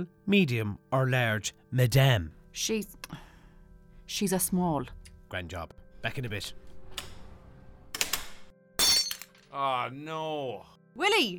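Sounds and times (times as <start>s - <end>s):
speech: 0.0s - 3.2s, 4.1s - 6.6s, 9.5s - 11.3s
large serving dish falling and smashing: 8.8s - 9.4s
ringing, scattering shards: 8.8s - 9.5s.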